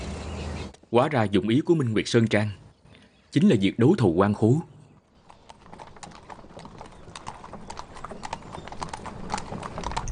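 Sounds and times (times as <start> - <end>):
speech: 0.9 - 2.6, 3.3 - 4.8
horse hooves clip-clopping: 5.0 - 10.1.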